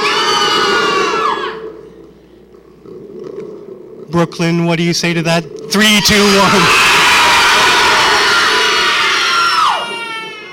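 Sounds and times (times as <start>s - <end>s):
audience screaming together on cue at a live event: 0.0s - 1.6s, 6.0s - 10.5s
speech: 4.1s - 6.9s.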